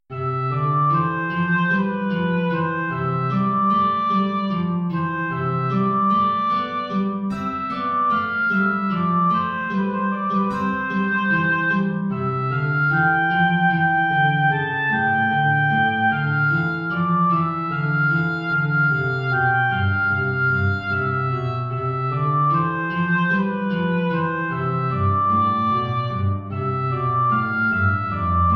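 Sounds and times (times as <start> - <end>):
guitar accompanying an aria: 0.1 - 28.5
oboe playing an aria: 0.1 - 28.5.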